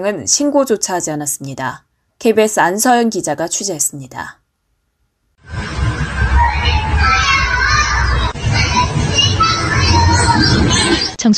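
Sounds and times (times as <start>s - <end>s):
speech: 0.0s - 4.4s, 10.5s - 11.3s
wailing and shouting voices at a care facility: 5.6s - 11.2s.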